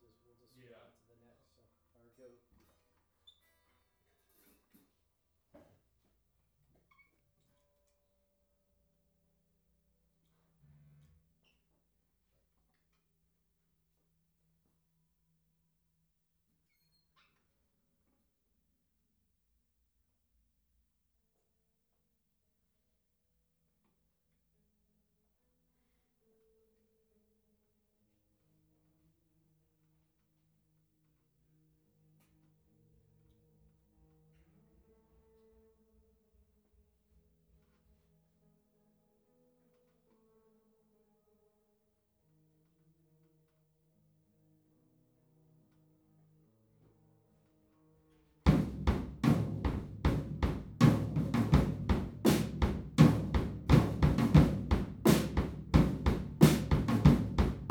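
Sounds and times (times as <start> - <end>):
drums recorded with an omnidirectional PZM microphone: 48.5 - 57.6.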